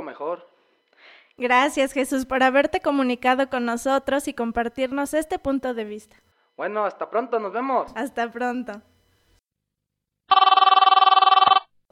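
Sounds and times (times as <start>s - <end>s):
speech: 0.1s - 8.9s
telephone ringing with electronic trilling for an incoming call: 10.3s - 11.7s.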